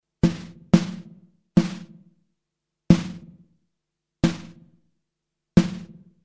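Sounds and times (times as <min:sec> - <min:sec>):
snare trapped noise: 0:00.2 - 0:02.0, 0:02.9 - 0:03.4, 0:04.2 - 0:04.7, 0:05.6 - 0:06.0.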